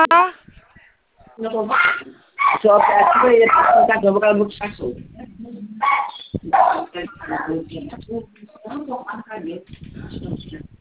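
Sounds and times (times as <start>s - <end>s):
dog barking and yipping: 1.3s - 4.0s, 5.8s - 7.6s
indistinct voices talking: 1.4s - 10.7s
speech: 1.4s - 10.7s.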